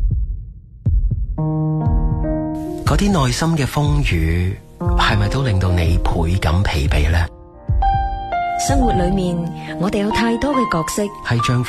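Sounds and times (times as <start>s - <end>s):
deep heartbeat thumping: 0.0s - 2.5s, 6.8s - 9.4s
speech: 1.4s - 1.9s, 2.9s - 7.3s, 8.6s - 11.6s.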